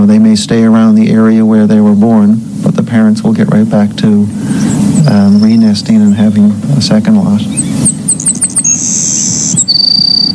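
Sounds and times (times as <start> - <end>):
speech: 0.0 - 7.9
Savannah sparrow singing: 4.2 - 10.3.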